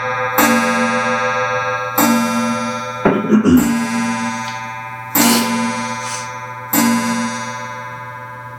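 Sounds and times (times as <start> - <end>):
clock striking: 0.4 - 1.2, 1.9 - 7.8
speech: 3.4 - 3.8.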